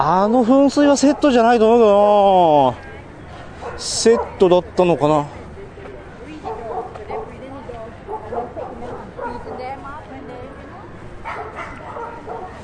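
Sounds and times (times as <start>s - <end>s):
speech: 0.0s - 2.9s, 3.8s - 5.4s
several dogs barking and yipping outdoors at a dog run: 3.6s - 4.4s, 6.4s - 7.4s, 8.0s - 9.8s, 11.2s - 12.6s.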